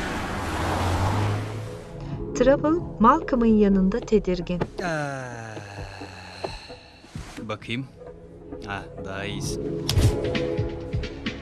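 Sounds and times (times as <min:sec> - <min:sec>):
low engine drone of a vehicle passing: 0:00.0 - 0:02.3
steady broadband roar of evening city traffic: 0:00.0 - 0:04.7
speech: 0:02.4 - 0:06.2, 0:07.5 - 0:08.0, 0:08.6 - 0:10.8.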